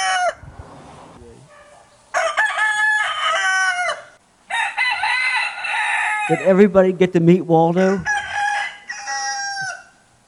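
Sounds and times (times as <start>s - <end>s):
pet rooster crowing: 0.0s - 0.4s, 1.6s - 6.6s, 7.9s - 10.1s
speech: 6.3s - 8.1s.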